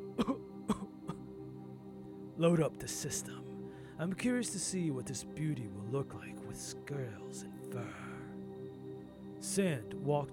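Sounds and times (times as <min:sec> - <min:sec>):
man coughing from cigarette smoke: 0:00.2 - 0:01.2
speech: 0:02.4 - 0:08.1, 0:09.4 - 0:10.3.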